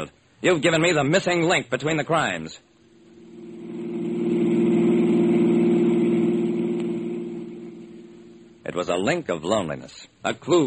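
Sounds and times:
speech: 0:00.0 - 0:02.7, 0:08.7 - 0:10.6
car engine droning as the car is driven: 0:02.9 - 0:08.7.

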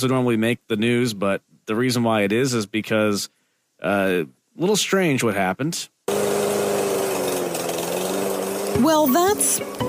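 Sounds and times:
speech: 0:00.0 - 0:06.2, 0:08.8 - 0:09.8
lawnmower engine mowing a lawn: 0:06.1 - 0:09.8.

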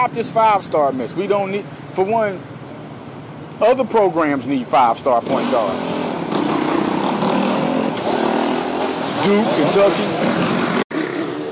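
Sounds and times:
speech: 0:00.0 - 0:02.6, 0:03.6 - 0:06.0, 0:09.2 - 0:10.6
motorcycles riding past on a city street at City Hall in Philadelphia: 0:05.0 - 0:11.5.

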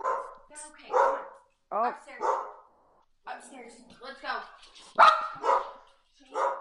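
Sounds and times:
several dogs barking: 0:00.0 - 0:01.4, 0:02.2 - 0:02.7, 0:05.0 - 0:06.5.

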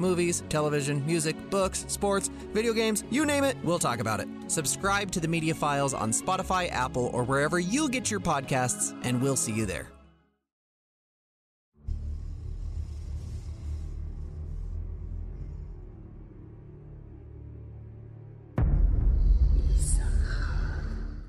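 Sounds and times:
speech: 0:00.0 - 0:10.0
dark rumbling low drone in video game theme music: 0:11.8 - 0:21.2.

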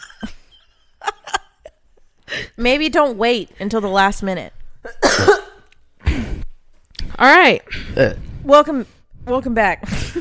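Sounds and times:
speech: 0:02.6 - 0:04.6, 0:07.2 - 0:10.2
loud guttural burp and rough belch: 0:04.9 - 0:05.6, 0:07.9 - 0:08.3.

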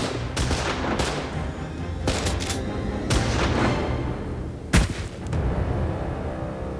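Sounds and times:
volley of gunshots: 0:00.0 - 0:01.4, 0:02.0 - 0:03.8
dense rumbling background: 0:00.0 - 0:06.7.

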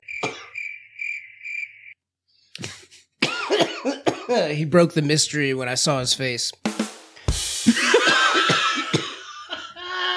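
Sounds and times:
steady cricket-like trill: 0:00.0 - 0:02.0
person coughing raspily: 0:00.2 - 0:00.6, 0:02.7 - 0:04.5, 0:07.8 - 0:09.5
speech: 0:04.3 - 0:06.7
laughter: 0:07.6 - 0:10.1.

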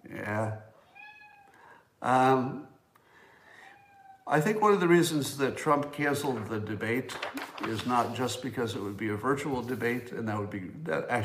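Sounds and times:
speech: 0:00.3 - 0:00.6, 0:02.0 - 0:02.7, 0:04.3 - 0:11.2
domestic cat meowing: 0:00.8 - 0:01.6, 0:03.6 - 0:04.3.

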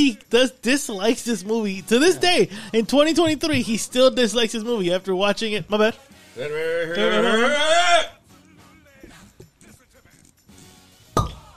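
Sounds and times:
speech: 0:00.0 - 0:08.2
high-pitched vocal squeal: 0:06.4 - 0:08.1
cork popping from a bottle of alcohol: 0:11.2 - 0:11.5.

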